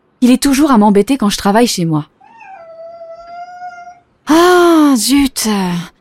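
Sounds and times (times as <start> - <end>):
speech: 0.2 - 2.1, 5.0 - 5.9
cat yowling in complaint over unchanged litter: 2.2 - 4.1.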